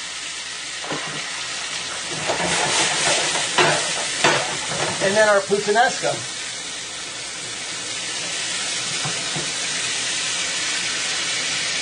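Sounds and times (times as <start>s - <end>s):
pink spot prawns sautéing in clarified butter with white wine: 0.0s - 11.8s
stirring scrapes and soft clatters in the pan: 1.9s - 5.0s
speech: 5.0s - 6.3s.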